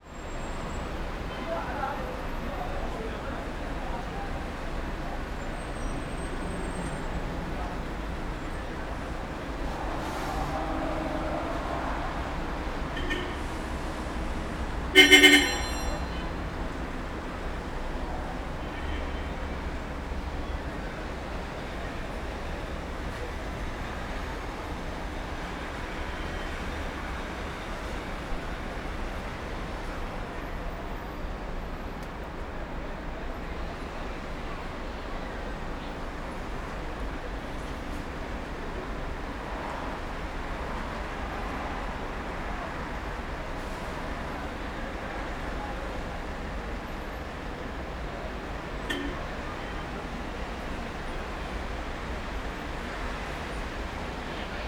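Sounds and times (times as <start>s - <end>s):
city traffic in Istanbul: 0.0s - 54.6s
car horns in Istanbul: 10.1s - 16.6s, 48.8s - 50.0s.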